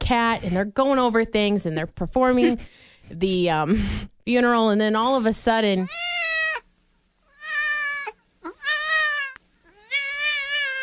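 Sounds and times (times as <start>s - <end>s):
speech: 0.1s - 6.1s
cat meowing: 5.9s - 6.6s, 7.3s - 10.8s.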